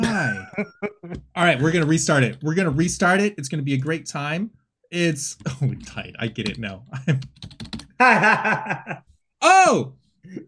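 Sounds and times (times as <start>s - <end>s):
person making a rising-falling exclamation: 0.0s - 0.6s, 9.4s - 9.8s
person chuckling: 0.0s - 1.2s, 8.0s - 9.0s
speech: 0.6s - 10.4s
computer keyboard keys clacking: 6.4s - 7.9s.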